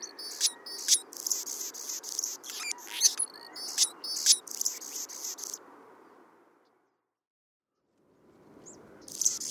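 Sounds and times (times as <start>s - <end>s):
Anna's hummingbird giving scratchy squeaky buzzing phrases with ticks: 0.0s - 5.6s.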